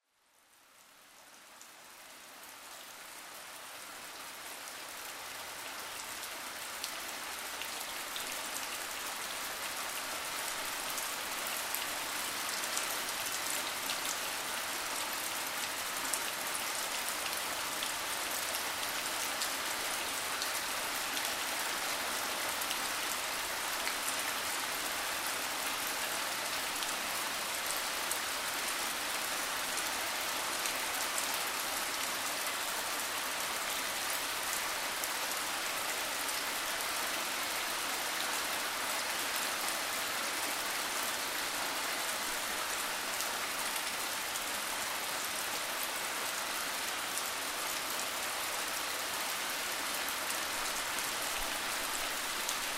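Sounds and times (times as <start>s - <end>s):
rain: 0.0s - 52.7s.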